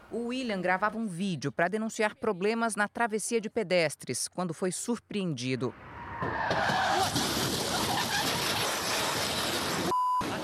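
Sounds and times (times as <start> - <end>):
speech: 0.1 - 7.2
speeding car tires squealing on a highway: 5.7 - 9.8
brief beep: 9.9 - 10.4.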